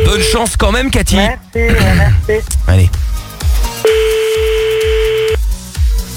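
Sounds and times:
speech: 0:00.3 - 0:03.0
loud steady pulsing music beat: 0:02.2 - 0:06.1
sustained mid-pitched telephone tone as a call is placed: 0:03.8 - 0:05.4.

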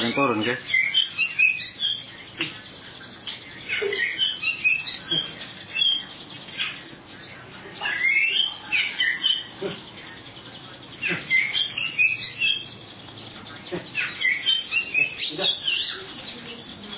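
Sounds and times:
Oriental magpie-robin singing chattering and whistled phrases: 0:00.0 - 0:02.6, 0:03.2 - 0:06.8, 0:07.8 - 0:09.6, 0:11.0 - 0:12.8, 0:14.0 - 0:16.9
speech: 0:00.2 - 0:00.8.

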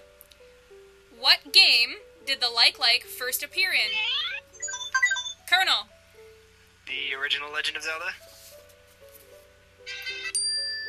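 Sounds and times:
speech: 0:01.2 - 0:04.3, 0:05.5 - 0:05.9, 0:06.9 - 0:08.3
bell-like correct-answer chime in a trivia quiz: 0:10.3 - 0:10.8.

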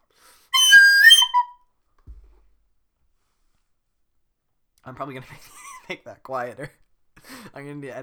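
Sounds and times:
loud bright whistling: 0:00.6 - 0:01.6
speech: 0:04.8 - 0:06.8, 0:07.5 - 0:08.0.

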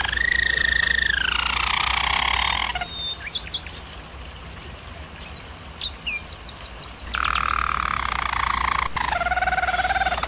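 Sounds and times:
German Roller canary singing: 0:00.0 - 0:03.8, 0:05.8 - 0:10.2.

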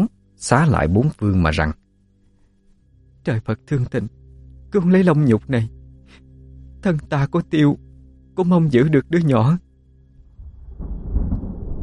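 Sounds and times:
speech: 0:00.4 - 0:01.8, 0:03.2 - 0:06.2, 0:06.8 - 0:09.6
thunder rumbling over water by a bridge: 0:10.3 - 0:11.8.

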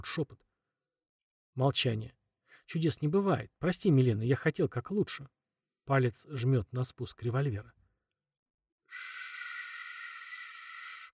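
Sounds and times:
speech: 0:00.0 - 0:00.5, 0:01.6 - 0:07.8, 0:08.9 - 0:09.1
loud sharp hiss: 0:09.0 - 0:11.1.

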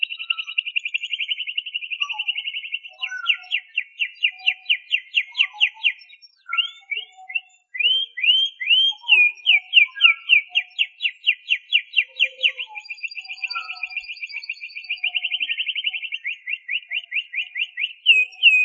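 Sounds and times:
canary singing chirps, whistles and trills: 0:00.0 - 0:18.6.

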